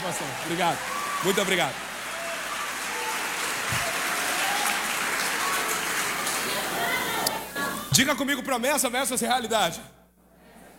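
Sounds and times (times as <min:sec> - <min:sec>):
crowd applauding: 0:00.0 - 0:07.9
speech: 0:00.1 - 0:01.9, 0:08.0 - 0:10.0.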